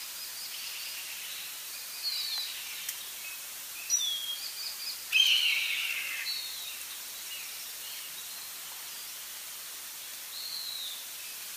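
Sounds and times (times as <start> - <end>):
steady background hiss: 0.0 - 11.5
bird calls: 0.4 - 9.2.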